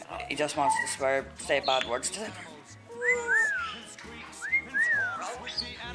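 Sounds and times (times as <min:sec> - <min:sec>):
speech: 0:00.3 - 0:02.5
pet bird whistling swooping notes: 0:03.0 - 0:05.8.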